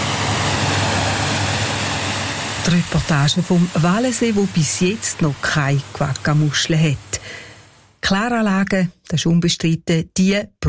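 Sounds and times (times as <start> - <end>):
pump motor humming: 0.0 - 7.8
high-pressure water spray hosing down a motorboat: 0.0 - 8.0
speech: 2.6 - 7.4, 8.0 - 10.6.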